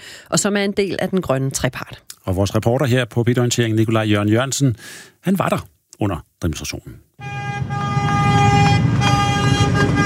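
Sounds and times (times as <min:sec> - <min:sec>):
speech: 0:00.3 - 0:07.8
tractor engines and traffic rumbling: 0:07.2 - 0:10.0
tractor horns honking during a farmers' protest in Copenhagen: 0:07.2 - 0:10.0.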